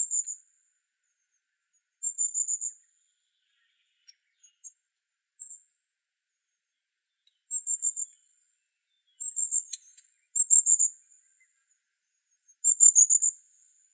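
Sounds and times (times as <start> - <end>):
Long-tailed tit Aegithalos caudatus trilled calls: 0.0 - 0.4, 2.0 - 4.8, 7.3 - 8.3, 8.9 - 11.5, 12.6 - 13.4.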